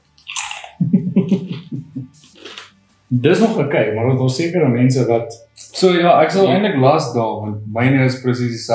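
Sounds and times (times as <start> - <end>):
loud crunchy chewing: 0.2 - 0.8
laughter: 0.8 - 2.6
speech: 1.3 - 1.6, 3.1 - 8.7.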